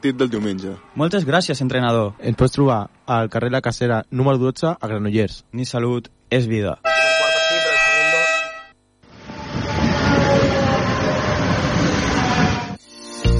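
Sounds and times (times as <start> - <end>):
speech: 0.0 - 6.9
short tone: 6.8 - 8.9
train horn blast: 6.8 - 12.8.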